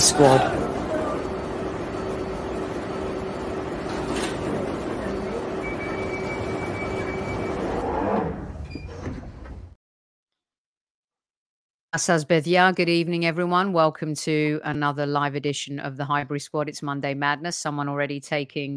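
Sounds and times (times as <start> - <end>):
underground train idling at a platform: 0.0 - 7.8
high electric whine of underground train: 0.0 - 8.2
speech: 0.1 - 0.6, 12.0 - 18.7.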